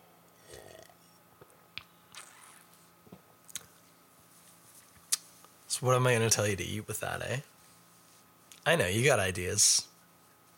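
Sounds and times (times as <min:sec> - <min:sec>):
person sipping beer: 0:00.4 - 0:01.2, 0:02.1 - 0:02.8
wet mouth clicks and smacks: 0:01.8 - 0:02.7, 0:03.5 - 0:03.7, 0:05.0 - 0:05.3
swallow: 0:02.1 - 0:02.7
speech: 0:05.8 - 0:07.5, 0:08.7 - 0:09.9.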